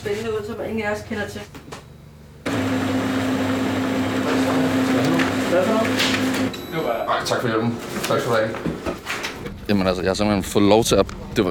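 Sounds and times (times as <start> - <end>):
speech: 0.0 - 1.6, 4.4 - 8.7, 9.7 - 11.4
printer feeding paper with mechanical whir and hum: 2.4 - 9.2.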